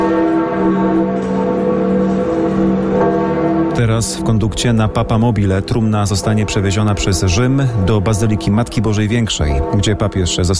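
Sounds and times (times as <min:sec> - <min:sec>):
church bells pealing at St. Peter's Basilica in Rome: 0:00.0 - 0:10.5
speech: 0:03.8 - 0:10.5.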